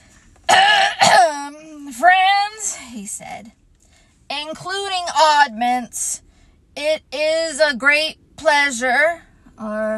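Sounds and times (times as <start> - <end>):
loud deliberate theatrical cough and throat clearing: 0.5 - 1.4
speech: 3.2 - 3.6, 4.5 - 6.2, 6.8 - 9.9.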